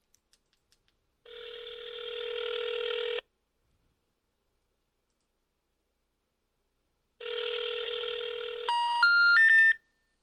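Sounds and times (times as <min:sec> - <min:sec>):
telephone ringing tones of a call to a toll-free number: 0:01.3 - 0:03.2, 0:07.2 - 0:09.8.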